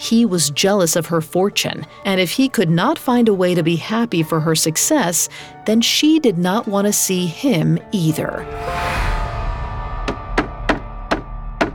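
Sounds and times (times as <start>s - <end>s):
speech: 0.1s - 9.1s
knocking on a wooden door: 10.1s - 11.7s.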